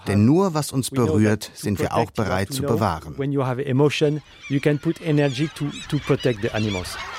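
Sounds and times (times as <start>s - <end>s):
speech: 0.0s - 7.1s
flock of crows and gulls calling: 3.8s - 7.1s.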